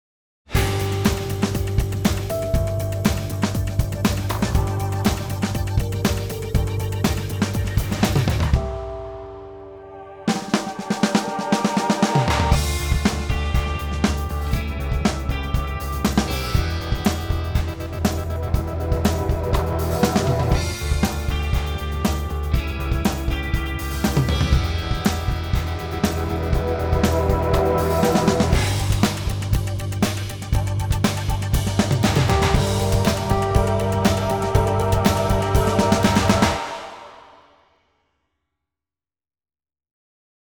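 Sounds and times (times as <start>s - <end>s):
full drum kit with music: 0.5s - 9.0s, 10.3s - 37.3s.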